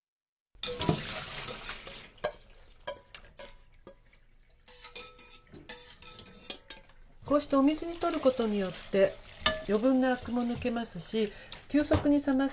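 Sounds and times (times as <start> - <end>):
slotted spoon clinking on pot and dishes: 0.6 - 4.1, 4.7 - 7.0, 9.4 - 9.8
dishes clattering: 0.6 - 7.0, 9.3 - 10.7
blanched spinach dropped into cold water sloshing and splashing: 0.6 - 12.5
speech: 7.3 - 12.5.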